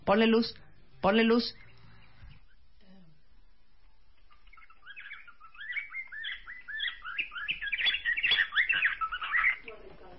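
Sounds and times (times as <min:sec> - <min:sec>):
speech: 0:00.1 - 0:01.6
budgerigar calling with warbling chirps and squeaky chatter: 0:04.4 - 0:09.8.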